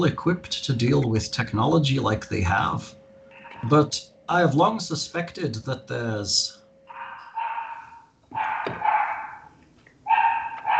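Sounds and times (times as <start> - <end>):
speech: 0.0 - 3.0, 3.6 - 6.6
dogs barking: 6.9 - 10.7.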